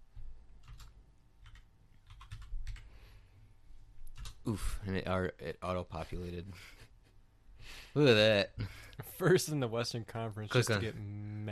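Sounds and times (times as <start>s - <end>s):
soft typing on a computer keyboard: 0.6s - 2.9s, 4.1s - 4.4s
speech: 4.4s - 6.8s, 7.9s - 11.5s.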